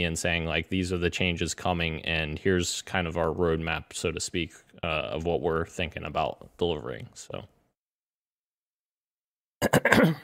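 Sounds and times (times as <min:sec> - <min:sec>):
speech: 0:00.0 - 0:07.6, 0:09.6 - 0:10.2
throat clearing: 0:09.6 - 0:10.2.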